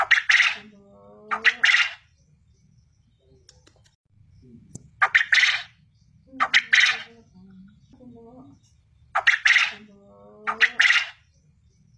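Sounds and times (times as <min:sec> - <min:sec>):
quail calling in rasping triple phrases: 0:00.0 - 0:02.1, 0:05.0 - 0:07.3, 0:09.2 - 0:11.2.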